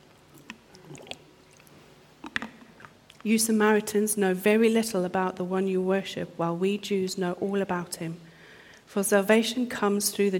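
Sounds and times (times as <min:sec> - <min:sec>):
quiet sipping of water with wet slurps: 0:00.0 - 0:03.3
swallowing sounds: 0:00.3 - 0:03.2
mouth clicks: 0:00.4 - 0:03.2
speech: 0:03.2 - 0:08.2, 0:08.9 - 0:10.3.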